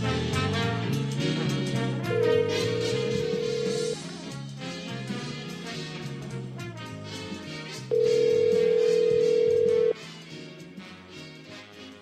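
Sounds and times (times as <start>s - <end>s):
music: 0.0s - 11.9s
outgoing phone call ringback tone: 2.1s - 4.0s, 7.9s - 9.9s.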